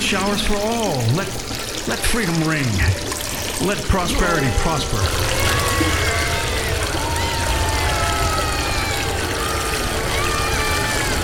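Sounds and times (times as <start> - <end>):
speech: 0.1 - 6.3
loud rushing river water with gurgling: 1.3 - 11.2.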